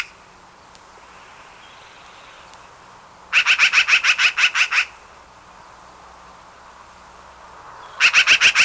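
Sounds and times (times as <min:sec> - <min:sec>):
black-billed magpie rattling chatter: 0:03.3 - 0:04.9, 0:08.0 - 0:08.6.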